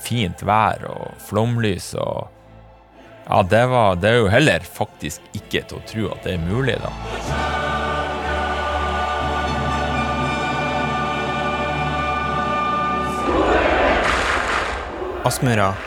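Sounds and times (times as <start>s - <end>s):
stately choral and orchestral anthem over stadium speakers: 0.0s - 15.8s
speech: 0.1s - 2.4s, 3.3s - 7.5s, 15.2s - 15.8s
broad stadium crowd roar: 13.1s - 15.8s.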